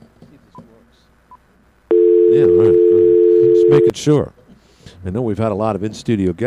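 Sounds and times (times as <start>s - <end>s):
telephone keypad dialing tones: 1.9s - 3.9s
speech: 2.4s - 3.0s, 3.7s - 4.4s, 5.0s - 6.4s.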